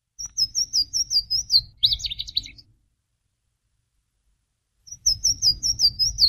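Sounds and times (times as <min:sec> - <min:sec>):
Louisiana waterthrush singing: 0:00.2 - 0:02.7, 0:04.9 - 0:06.2.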